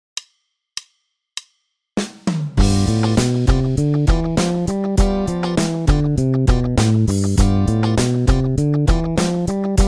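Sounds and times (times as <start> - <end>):
bass playing exercises in Mixolydian mode: 2.6 - 9.8.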